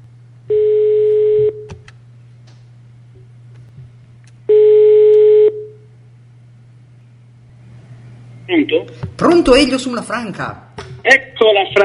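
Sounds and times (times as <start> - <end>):
constant low hum on the telephone line: 0.0 - 11.8
telephone ringback tone while a call is placed: 0.5 - 1.6, 4.5 - 5.8
speech: 8.5 - 11.8.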